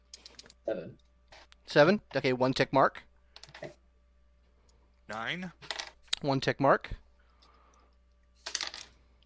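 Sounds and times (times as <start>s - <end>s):
speech: 0.7s - 1.1s, 1.7s - 3.8s, 5.1s - 7.0s
dice tumbling across a hard tabletop: 5.6s - 6.0s, 8.4s - 9.0s.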